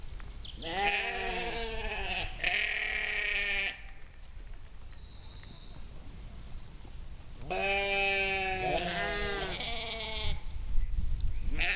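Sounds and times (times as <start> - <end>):
sheep bleating: 0.6 - 3.8, 7.5 - 10.4, 11.6 - 11.7.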